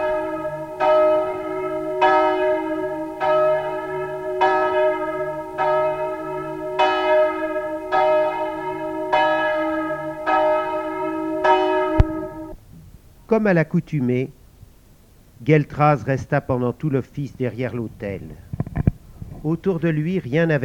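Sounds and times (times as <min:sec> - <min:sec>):
church bell ringing for matins: 0:00.0 - 0:12.5
speech: 0:13.4 - 0:14.4, 0:15.4 - 0:18.4, 0:19.4 - 0:20.6.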